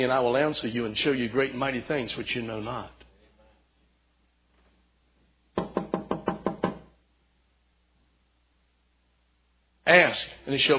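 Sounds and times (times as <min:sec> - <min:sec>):
speech: 0:00.0 - 0:03.0, 0:09.9 - 0:10.7
knocking on a door: 0:05.6 - 0:06.9.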